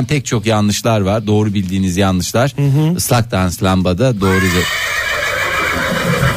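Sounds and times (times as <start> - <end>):
speech: 0.0 - 6.3
horse neighing: 4.2 - 6.3.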